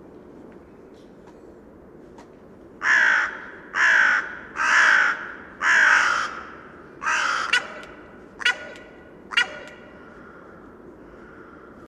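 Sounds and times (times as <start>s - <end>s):
carrion crow Corvus corone giving harsh caws: 2.8s - 11.8s.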